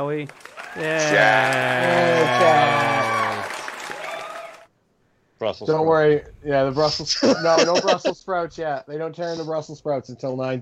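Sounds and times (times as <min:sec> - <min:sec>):
speech: 0:00.0 - 0:03.2, 0:05.4 - 0:10.5
applause from a small group: 0:00.0 - 0:04.7
laughter: 0:00.8 - 0:03.7, 0:07.0 - 0:08.2.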